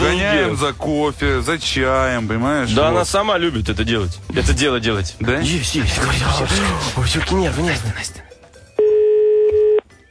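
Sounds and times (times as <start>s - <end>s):
speech: 0.4s - 8.2s
steady electronic telephone tone: 8.8s - 9.9s.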